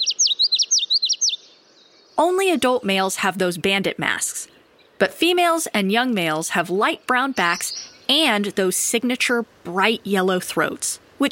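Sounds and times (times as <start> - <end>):
male Common Yellowthroat song of slurred whistled notes: 0.0 - 2.2, 7.3 - 8.1
speech: 2.2 - 11.3.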